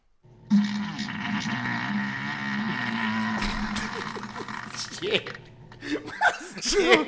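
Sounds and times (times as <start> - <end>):
long loud recorded fart in a farting contest: 0.5 - 5.4
laughter: 3.4 - 7.0
speech: 5.0 - 5.4, 6.6 - 7.0.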